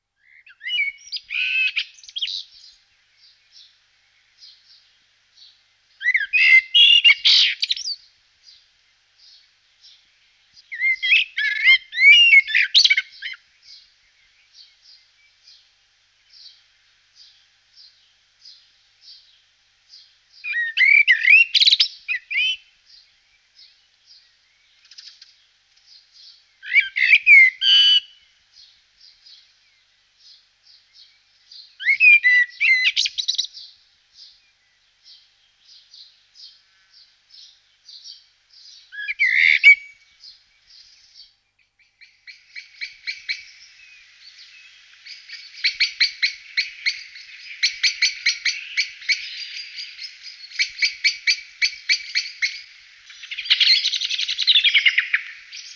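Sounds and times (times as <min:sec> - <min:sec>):
blackbird singing: 0:00.2 - 0:16.6, 0:17.2 - 0:55.7.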